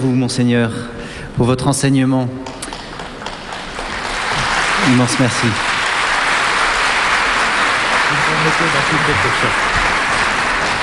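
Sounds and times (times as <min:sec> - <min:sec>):
speech: 0:00.0 - 0:02.6, 0:04.9 - 0:05.7, 0:08.5 - 0:09.9
large audience applauding: 0:02.7 - 0:10.8.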